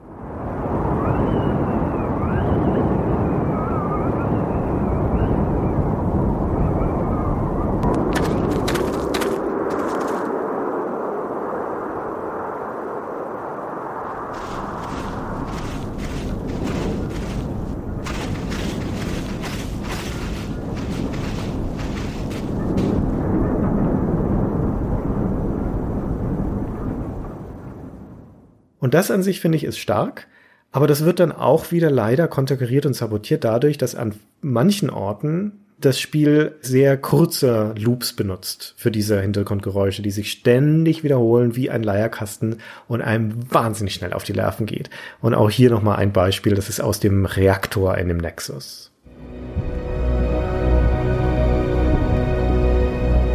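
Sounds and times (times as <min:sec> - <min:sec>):
wind howling over a windswept plain: 0:00.0 - 0:28.6, 0:49.1 - 0:53.3
speech: 0:28.9 - 0:49.8.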